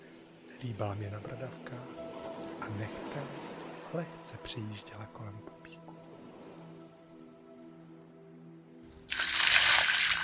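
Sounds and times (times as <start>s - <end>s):
speech: 0.6s - 6.0s
water poured from a bucket: 9.1s - 10.2s.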